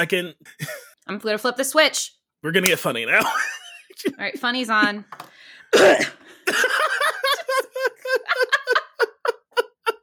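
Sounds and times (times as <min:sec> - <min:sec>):
speech: 0:00.0 - 0:06.8
person coughing: 0:03.2 - 0:03.6, 0:05.7 - 0:08.2
rhythmic breathy laughter: 0:06.3 - 0:10.0.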